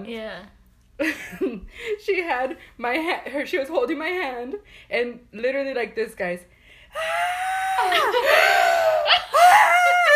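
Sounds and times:
speech: 0.0 - 9.7
person imitating a long high-pitched scream: 7.0 - 10.1.

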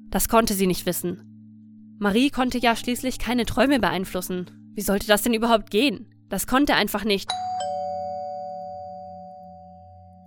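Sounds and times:
speech: 0.1 - 1.3, 2.0 - 7.6
doorbell ringing with a bright chime: 7.3 - 10.2.

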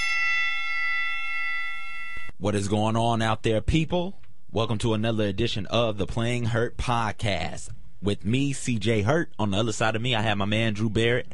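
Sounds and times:
bright metallic bell ringing: 0.0 - 2.3
speech: 2.4 - 11.3.

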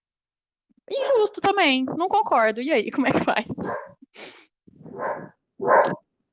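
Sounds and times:
speech: 0.9 - 6.0
dog barking in loud bursts: 1.0 - 1.3, 3.6 - 4.0, 4.9 - 6.0.

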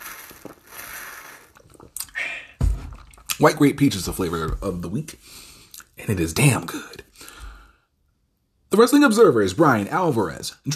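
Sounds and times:
person sipping water with slurps and swallows: 0.0 - 3.4
speech: 3.4 - 5.5, 6.1 - 7.0, 8.7 - 10.7.

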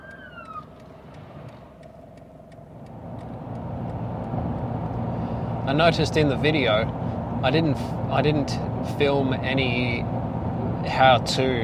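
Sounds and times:
ambulance siren wail: 0.0 - 0.9
faint regular ticking: 0.0 - 5.2
road rumble: 0.0 - 11.6
speech: 5.7 - 10.2, 10.8 - 11.6.

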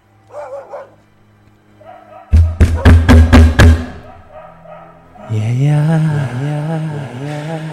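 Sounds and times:
loud heavy knocking on a door: 2.4 - 3.9
speech: 5.3 - 7.7.

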